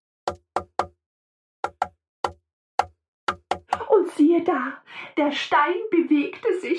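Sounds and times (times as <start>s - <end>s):
knocking on a table: 1.7s - 1.9s, 2.8s - 3.8s
speech: 4.1s - 6.7s.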